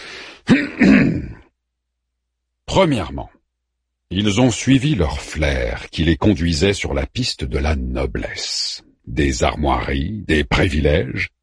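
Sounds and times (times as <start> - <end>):
throat clearing: 0.4 - 1.5
speech: 2.8 - 3.4, 4.1 - 11.4.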